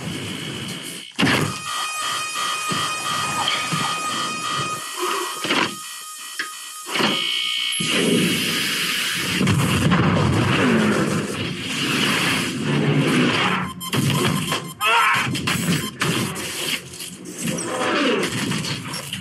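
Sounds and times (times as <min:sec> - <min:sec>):
electronic alarm tones: 0:00.0 - 0:08.4, 0:13.4 - 0:16.4
rough mechanical background: 0:00.0 - 0:19.2.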